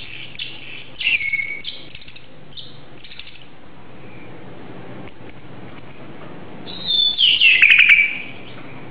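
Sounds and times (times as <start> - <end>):
Oriental magpie-robin singing a drawn-out descending whistled phrase: 0.0 - 3.4, 6.7 - 8.6.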